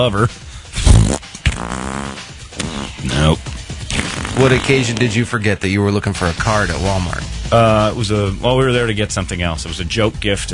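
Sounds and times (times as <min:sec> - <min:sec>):
speech: 0:00.0 - 0:00.5, 0:01.1 - 0:01.3, 0:04.4 - 0:10.5
voice imitating a fart: 0:00.8 - 0:05.0.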